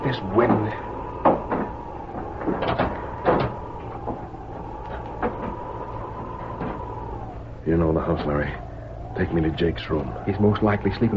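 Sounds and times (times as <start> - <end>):
door opening and closing with clunks and rattles: 0.0 - 7.5
steady low hum: 0.0 - 11.1
speech: 0.1 - 0.9, 8.0 - 11.1
soft knocks: 0.4 - 7.4.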